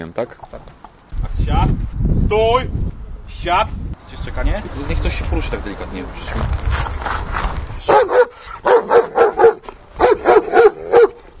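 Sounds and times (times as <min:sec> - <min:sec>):
speech: 0:00.0 - 0:00.9, 0:01.5 - 0:08.0
police service dog barking: 0:07.9 - 0:11.2.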